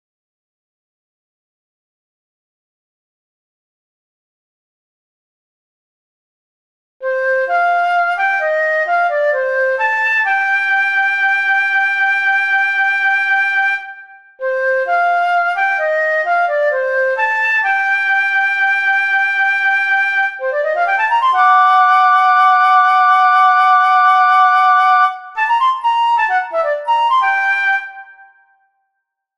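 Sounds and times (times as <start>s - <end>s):
transverse flute: 7.0s - 28.8s.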